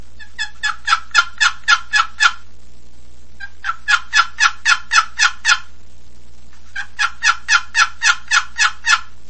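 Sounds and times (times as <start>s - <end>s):
turkey monotonous cry: 0.2s - 2.4s, 3.4s - 5.7s, 6.7s - 9.2s.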